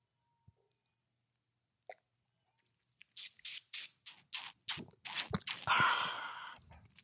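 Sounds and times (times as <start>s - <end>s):
sipping newly released wine from a glass: 3.2s - 6.7s.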